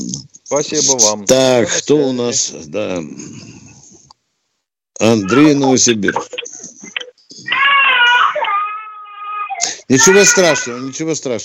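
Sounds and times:
speech: 0.5 - 3.5, 5.0 - 6.4, 9.9 - 11.4
baby crying: 7.4 - 11.0.

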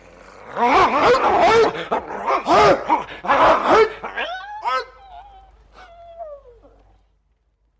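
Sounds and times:
dog barking: 0.6 - 5.0.

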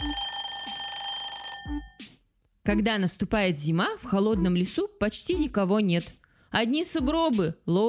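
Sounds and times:
alarm clock ringing: 0.0 - 2.0
speech: 2.7 - 7.8.

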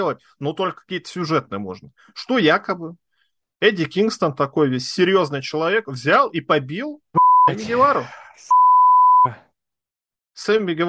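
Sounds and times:
speech: 0.0 - 3.0, 3.6 - 8.6, 9.2 - 9.4, 10.4 - 10.8
loud steady censor bleep over profanity: 7.2 - 7.5, 8.5 - 9.3.

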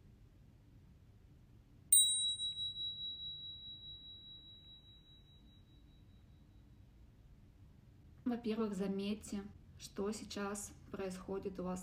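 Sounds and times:
meditation bell ringing: 1.9 - 6.0
speech: 8.3 - 11.8.

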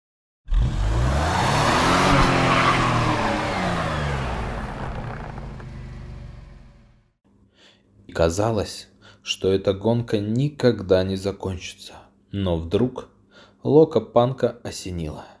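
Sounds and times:
monster trucks revving engines and spinning wheels stuck in deep mud puddles: 0.5 - 6.9
speech: 8.1 - 15.3.

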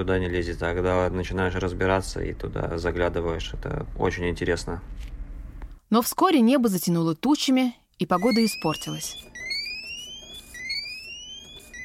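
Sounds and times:
speech: 0.0 - 5.2, 5.9 - 9.4
ship's alarm signal warning the crew of a cyclone: 8.1 - 11.8.

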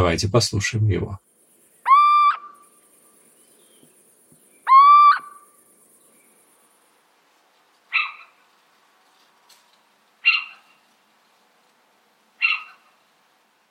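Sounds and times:
speech: 0.0 - 1.3
little owl drawn-out rising plaintive hoots: 1.8 - 2.8, 4.6 - 5.6, 7.9 - 8.4, 10.2 - 10.8, 12.4 - 13.0.

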